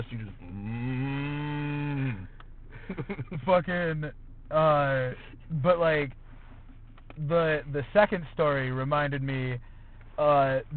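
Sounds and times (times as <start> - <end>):
person imitating a cow's moo: 0.6 - 2.2
speech: 3.0 - 6.2, 7.2 - 10.7.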